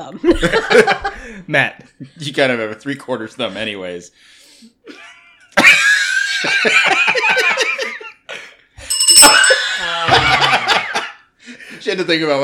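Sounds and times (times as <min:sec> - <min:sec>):
speech: 0:00.0 - 0:10.8, 0:11.8 - 0:12.4
people laughing heartily: 0:00.2 - 0:01.4, 0:04.9 - 0:08.6, 0:09.2 - 0:11.3
bright metallic bell ringing: 0:08.8 - 0:10.5.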